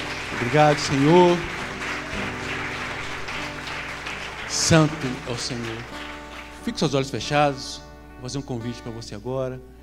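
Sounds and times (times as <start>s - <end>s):
audience at a worship service applauding: 0.0s - 6.8s
speech: 0.3s - 1.6s, 4.6s - 6.0s, 6.6s - 9.7s.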